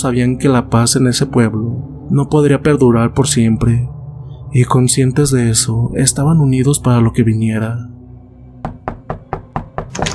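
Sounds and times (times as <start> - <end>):
speech: 0.0 - 8.0
knocking on a door: 8.6 - 10.1.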